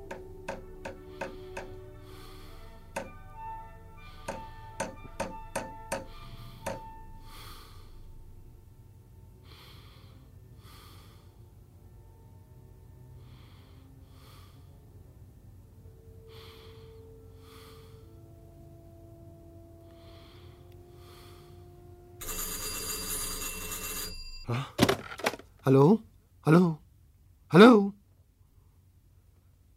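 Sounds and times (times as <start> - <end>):
hammer striking nails: 0.1 - 1.8, 2.9 - 3.3, 4.3 - 6.9
telephone bell ringing: 22.2 - 24.5
speech: 25.7 - 26.8, 27.5 - 27.9.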